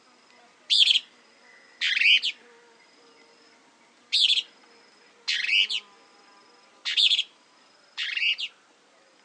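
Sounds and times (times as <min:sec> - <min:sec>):
Plain-crested elaenia Elaenia cristata cristata raspy buzzy calls: 0:00.7 - 0:01.2, 0:01.8 - 0:02.5, 0:04.1 - 0:04.6, 0:05.3 - 0:05.9, 0:06.8 - 0:07.4, 0:08.0 - 0:08.6.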